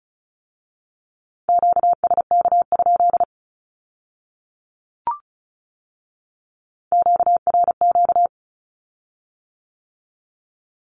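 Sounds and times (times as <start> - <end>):
high-pitched Morse code beeps sending Q-codes: 1.6 - 3.3, 7.0 - 8.3.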